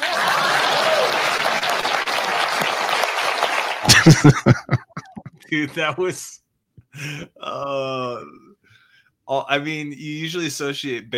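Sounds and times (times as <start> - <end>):
laughter: 0.0 - 1.9, 3.8 - 6.3
crowd clapping: 0.0 - 5.2
speech: 4.0 - 4.8, 5.5 - 6.4, 7.0 - 8.4, 9.3 - 11.1.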